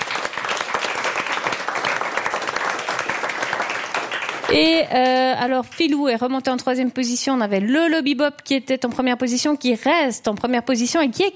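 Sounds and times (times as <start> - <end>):
large audience applauding: 0.0 - 4.7
speech: 4.5 - 11.3.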